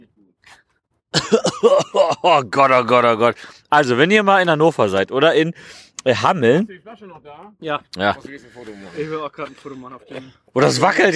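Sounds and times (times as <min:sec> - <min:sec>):
person coughing after drinking: 0:01.2 - 0:02.4
speech: 0:01.3 - 0:11.1.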